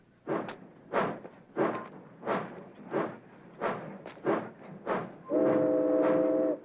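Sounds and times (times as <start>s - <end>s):
steam freight train locomotive chuffing: 0.2s - 6.6s
steam freight train whistle: 5.3s - 6.6s.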